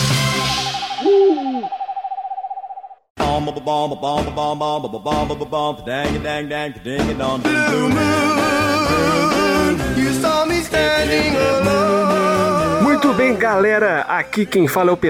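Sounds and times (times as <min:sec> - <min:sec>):
owl-like hoot: 0:00.9 - 0:02.5
loud bouncy rhythmic music with steady beats: 0:03.2 - 0:15.0
speech: 0:03.4 - 0:15.0.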